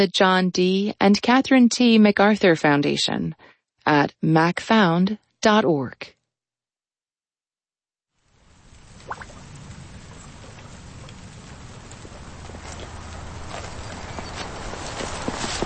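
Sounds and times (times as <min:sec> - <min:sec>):
speech: 0:00.0 - 0:06.2
steady rain pattering outdoors on a farm: 0:08.1 - 0:15.6
hoof-like clops and thuds from livestock moving about: 0:10.4 - 0:15.6.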